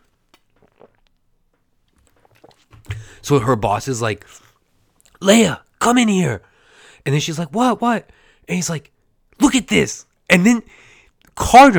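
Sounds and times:
person sipping water: 0.0s - 3.2s
speech: 3.2s - 4.5s, 5.2s - 11.7s.

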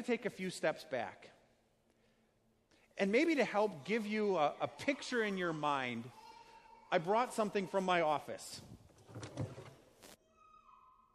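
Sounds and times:
speech: 0.0s - 1.4s, 3.0s - 6.2s, 6.9s - 9.4s
broken desk chair with broken piston clunking and scraping: 8.8s - 10.1s.

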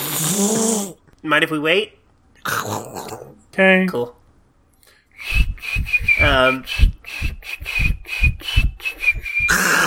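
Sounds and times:
speech: 0.4s - 4.2s, 5.2s - 8.7s
person whistling a song: 5.2s - 9.8s.

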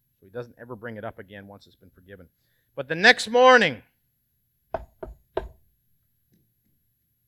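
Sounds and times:
speech: 0.3s - 4.0s
firm knocking on a door: 4.8s - 5.6s.

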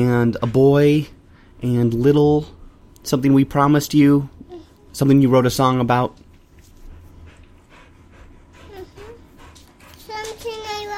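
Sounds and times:
speech: 0.0s - 4.4s, 5.0s - 6.2s
low hum: 0.0s - 10.9s
dog panting: 6.1s - 10.9s.

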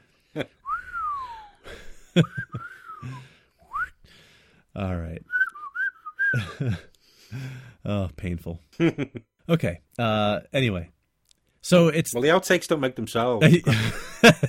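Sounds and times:
speech: 0.4s - 0.6s, 2.2s - 3.2s, 4.8s - 5.3s, 6.4s - 6.9s, 7.9s - 11.0s, 11.6s - 14.4s
person whistling a short phrase of sliding notes: 0.6s - 1.6s, 2.2s - 4.0s, 5.3s - 6.7s
laughter: 13.4s - 14.4s.

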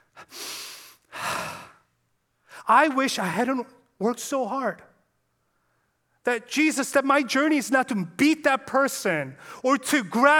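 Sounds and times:
deep breathing: 0.0s - 2.7s
speech: 2.7s - 4.9s, 6.2s - 10.3s.

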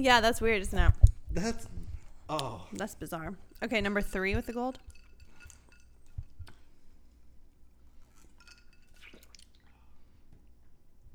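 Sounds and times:
speech: 0.0s - 5.0s
ice cubes clinking against the inside of a glass: 4.4s - 6.3s, 8.0s - 9.3s.

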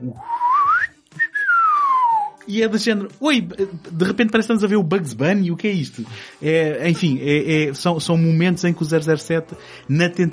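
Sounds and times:
speech: 0.0s - 0.4s, 2.5s - 10.3s
cartoonish slide whistle from a film soundtrack: 0.2s - 2.4s.

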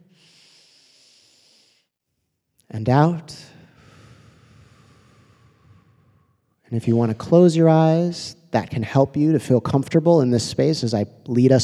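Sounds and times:
deep inhaled breath: 0.0s - 1.9s, 3.4s - 6.7s
speech: 2.8s - 3.5s, 6.7s - 11.6s.

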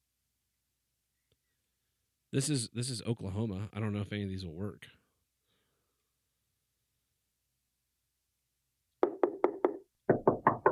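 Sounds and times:
speech: 2.3s - 5.0s
sharp knocks with a short hollow decay: 9.0s - 10.7s.

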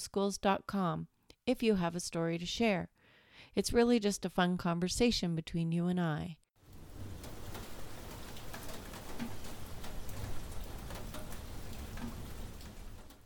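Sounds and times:
speech: 0.0s - 6.4s
rain drips: 6.6s - 13.2s
steady spring rain pattering in central Ontario: 6.6s - 13.2s.

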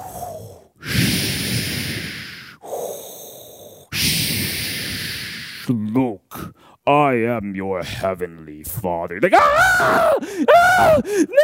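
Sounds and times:
voice imitating heavy menacing rasping breathing: 0.0s - 5.7s
speech: 5.7s - 11.4s.

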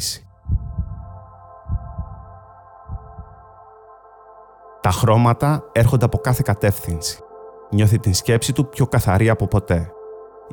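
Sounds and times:
speech: 0.0s - 0.3s, 4.9s - 10.5s
constant low hum: 0.0s - 9.7s
slow deep heartbeat thumping in lub-dub pairs: 0.3s - 3.6s.

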